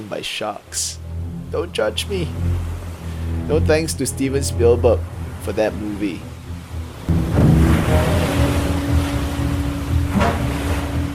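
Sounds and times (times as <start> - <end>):
speech: 0.0 - 2.7, 3.5 - 6.3
ocean waves crashing on shore: 0.0 - 11.1
low engine-like drone: 0.8 - 11.1.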